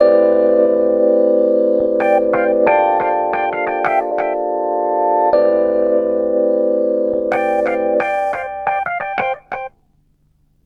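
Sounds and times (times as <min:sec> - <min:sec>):
electric piano: 0:00.0 - 0:09.7.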